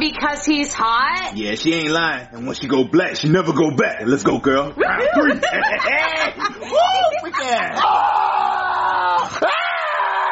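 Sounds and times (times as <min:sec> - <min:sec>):
speech: 0:00.0 - 0:08.1
laughter: 0:04.8 - 0:08.0
person screaming from a bad dream: 0:07.8 - 0:10.2.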